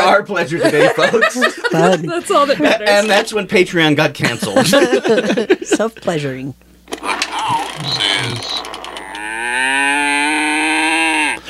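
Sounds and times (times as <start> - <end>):
laughter: 0.1 - 3.0, 4.2 - 6.0
speech: 0.1 - 8.7
cow grunting and mooing: 7.5 - 11.4.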